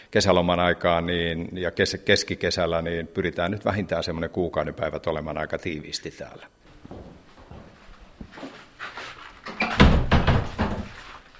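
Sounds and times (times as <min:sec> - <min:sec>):
speech: 0:00.1 - 0:06.6
shuffling footsteps: 0:06.6 - 0:09.8, 0:10.4 - 0:11.3
door scraping and creaking: 0:08.9 - 0:11.3
door shutting with a thud and rattle: 0:09.5 - 0:11.0.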